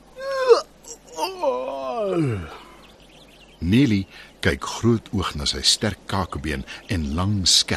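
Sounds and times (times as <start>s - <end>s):
voice imitating a big crocodile's huge drawn-out yawn: 0.2s - 2.8s
speech: 2.1s - 2.6s, 3.6s - 7.7s.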